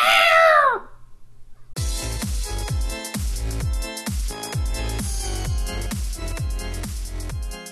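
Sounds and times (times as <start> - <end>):
loud drawn-out cat meow: 0.0 - 0.9
beat-driven music track: 1.8 - 7.6.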